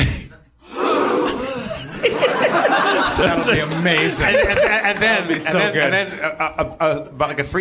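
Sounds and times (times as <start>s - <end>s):
crowd drawing in a sharp collective gasp: 0.6s - 4.2s
laughter: 0.7s - 7.2s
speech: 3.2s - 7.5s.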